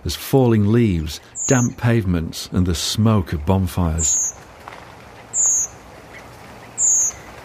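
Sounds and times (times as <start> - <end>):
speech: 0.0 - 4.2
steady low hiss: 0.0 - 7.4
redwings giving seep calls while flying over at night in autumn: 0.8 - 2.0, 3.8 - 7.4.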